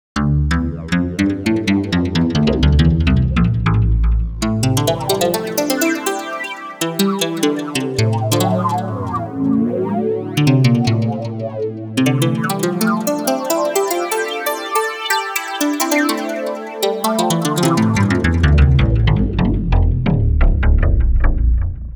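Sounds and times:
pluck lead synth with mod wheel: 0:00.2 - 0:21.8.

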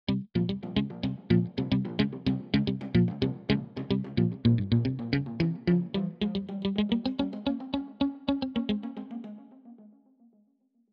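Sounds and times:
electric guitar: 0:00.1 - 0:09.5.

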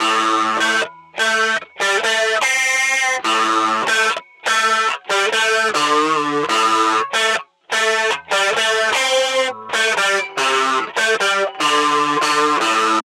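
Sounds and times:
guitar playing a chorus: 0:00.0 - 0:13.0.

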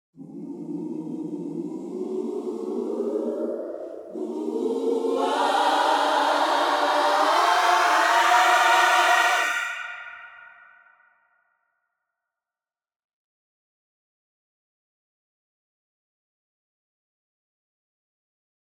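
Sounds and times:
ascending backing vocals: 0:00.2 - 0:10.8.

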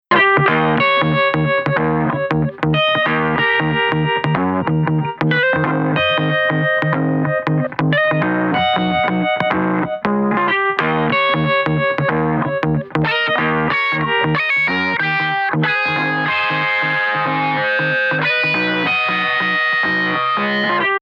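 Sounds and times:
electric guitar: 0:00.1 - 0:21.0.

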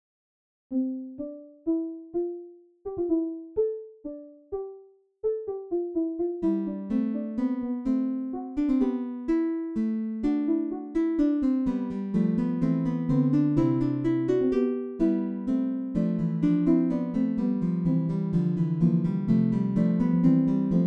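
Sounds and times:
plucked strings: 0:00.7 - 0:20.8.

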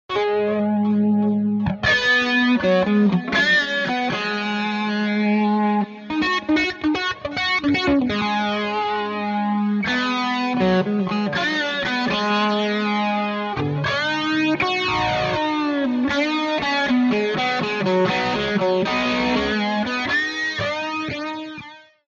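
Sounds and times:
lightweight chorus guitar: 0:00.1 - 0:22.0.

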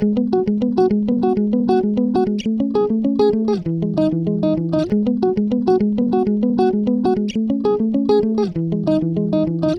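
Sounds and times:
clean guitar: 0:00.0 - 0:09.7.

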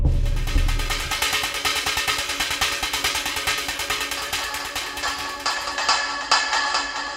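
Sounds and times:
echo patterns: 0:00.1 - 0:07.1.

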